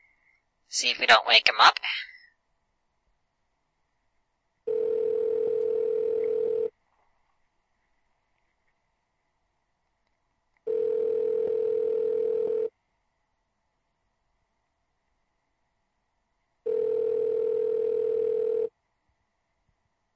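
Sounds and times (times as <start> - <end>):
speech: 0.7 - 2.1
phone ringback tone during outgoing call: 4.7 - 6.7, 10.7 - 12.7, 16.7 - 18.7.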